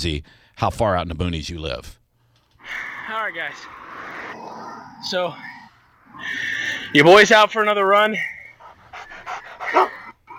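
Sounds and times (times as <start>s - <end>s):
speech: 0.0s - 2.0s, 2.6s - 3.8s, 4.4s - 5.6s, 6.2s - 8.4s, 9.7s - 10.0s
dog panting during a run: 8.4s - 10.3s
dog whining: 8.7s - 10.3s.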